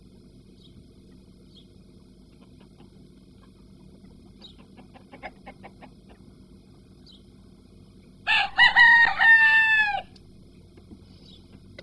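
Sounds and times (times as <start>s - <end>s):
chicken clucking softly: 2.3s - 6.3s
rooster crowing hoarsely: 8.2s - 10.2s.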